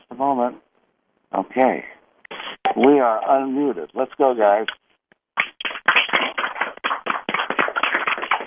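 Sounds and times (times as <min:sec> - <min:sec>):
speech: 0:01.6 - 0:02.0, 0:02.8 - 0:04.8
applause from callers over a phone line: 0:05.5 - 0:08.4.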